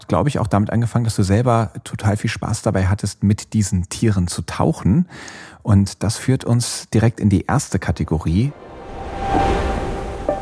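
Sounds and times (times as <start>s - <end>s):
speech: 0.1s - 9.4s
ocean surf waves rushing: 8.5s - 10.3s.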